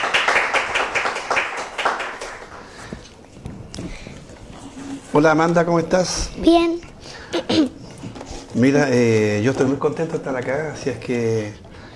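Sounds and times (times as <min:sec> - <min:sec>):
small group clapping for a guest: 0:00.0 - 0:03.1
speech: 0:05.2 - 0:06.8, 0:08.6 - 0:11.6.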